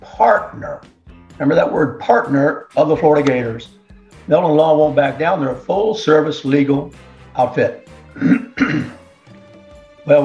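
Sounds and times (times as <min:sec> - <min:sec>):
speech: 0:00.0 - 0:09.0, 0:10.1 - 0:10.2
throat clearing: 0:08.1 - 0:09.0.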